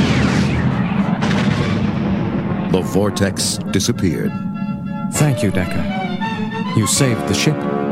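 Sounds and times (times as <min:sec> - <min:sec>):
photon torpedo explosion shattering an asteroid: 0:00.0 - 0:03.7
speech: 0:02.8 - 0:04.5, 0:05.1 - 0:06.0, 0:06.8 - 0:07.8.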